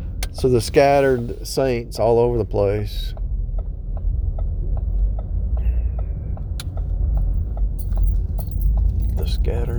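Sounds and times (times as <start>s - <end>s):
car turn signal clicking: 0.0s - 0.9s, 2.4s - 9.7s
car engine and road rumble in heavy traffic: 0.0s - 9.7s
speech: 0.4s - 3.2s, 9.2s - 9.7s
metallic jingle: 7.8s - 9.7s.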